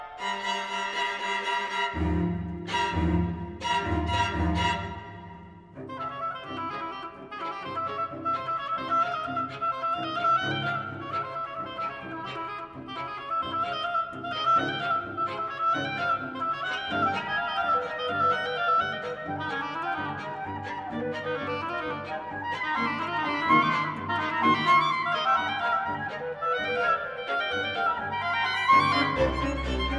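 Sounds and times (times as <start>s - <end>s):
clarinet: 0.0s - 29.9s
oboe: 0.0s - 29.9s
strings: 0.0s - 29.9s.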